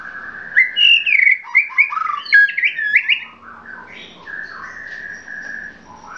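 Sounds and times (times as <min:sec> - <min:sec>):
Oriental magpie-robin singing bright slurred whistles and sweet warbles: 0:00.0 - 0:06.1.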